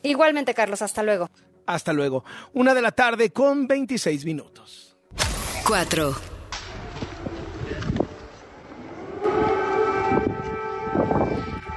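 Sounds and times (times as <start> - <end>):
speech: 0.0 - 6.3
footsteps: 5.2 - 8.9
air-raid sirens wailing: 6.7 - 11.7.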